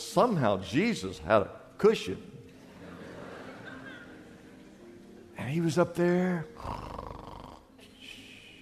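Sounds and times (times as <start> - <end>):
speech: 0.1 - 2.4, 5.4 - 7.0
laughter: 2.5 - 5.2
voice imitating a loud rasping snore: 6.6 - 7.7.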